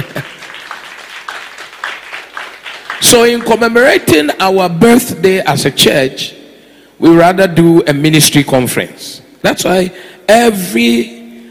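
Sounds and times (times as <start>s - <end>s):
church congregation applauding: 0.0s - 4.2s
speech: 3.0s - 6.4s, 7.0s - 11.2s.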